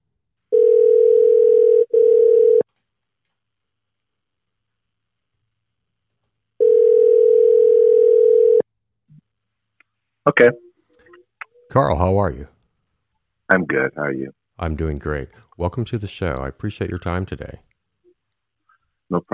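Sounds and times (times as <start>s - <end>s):
telephone dial tone while placing a call: 0.5s - 2.6s, 6.6s - 8.6s
speech: 10.3s - 10.7s, 11.7s - 12.5s, 13.5s - 17.7s, 19.1s - 19.3s.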